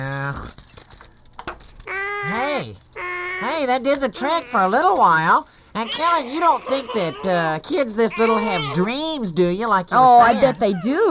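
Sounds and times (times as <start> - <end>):
set of car keys jangling: 0.0 - 8.1
speech: 3.4 - 11.0.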